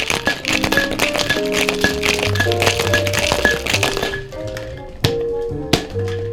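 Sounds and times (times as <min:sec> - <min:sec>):
ice rattling in a Boston cocktail shaker: 0:00.0 - 0:04.8
steady music: 0:00.0 - 0:06.3.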